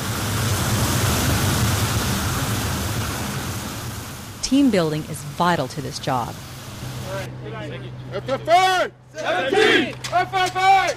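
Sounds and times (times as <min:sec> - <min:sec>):
water spraying from a fire hose as a water curtain during firefighter training: 0:00.0 - 0:07.3
speech: 0:04.5 - 0:06.5, 0:07.1 - 0:10.9.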